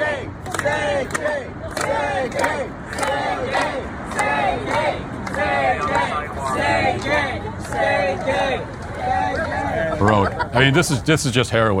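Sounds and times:
large crowd of protest marchers chanting slogans: 0.0 - 10.4
sharp claps or bangs: 0.4 - 6.1
laughter: 9.1 - 11.4
speech: 10.0 - 11.7.

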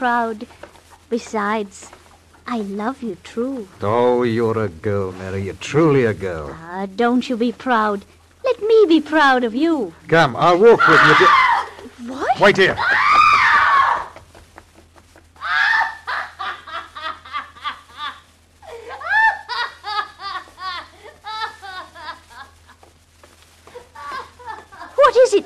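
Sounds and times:
speech: 0.0 - 11.4, 12.0 - 12.9
woman's high-pitched breathless shrieking bursts: 10.4 - 14.2
drunken woman screaming: 10.6 - 14.2, 15.4 - 16.4, 18.8 - 19.6.

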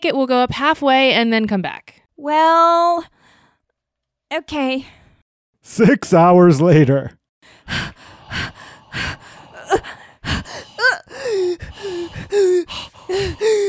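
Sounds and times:
speech: 0.0 - 3.2, 4.3 - 5.0, 5.6 - 10.6, 11.3 - 13.6
person gasping and wheezing after a long uphill hike: 7.6 - 13.6.

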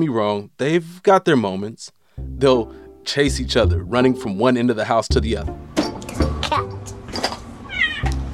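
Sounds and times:
speech: 0.0 - 6.3
kitten meowing: 7.7 - 8.2.

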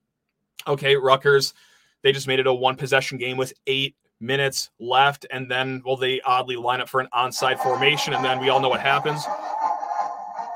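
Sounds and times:
speech: 0.7 - 9.6
tinny electronic melody from a digital ticker sign: 7.4 - 10.5.

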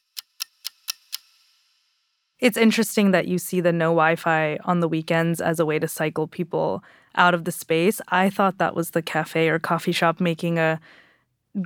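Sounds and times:
clock ticking: 0.0 - 1.8
speech: 2.4 - 11.0.

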